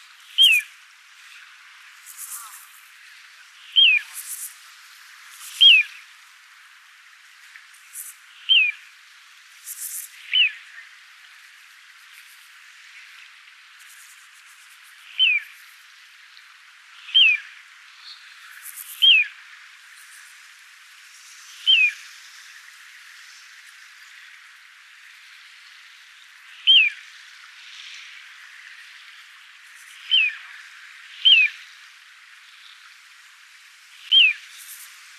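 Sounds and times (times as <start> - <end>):
little ringed plover calling: 0.4 - 0.6, 3.8 - 4.0, 8.5 - 8.8, 15.2 - 15.4, 17.1 - 17.4, 19.0 - 19.3, 21.7 - 22.0, 26.7 - 27.0, 30.1 - 30.4, 31.2 - 31.6, 34.1 - 34.5.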